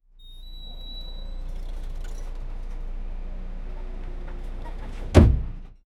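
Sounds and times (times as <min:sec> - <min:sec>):
old bus doors closing: 0:00.2 - 0:05.8.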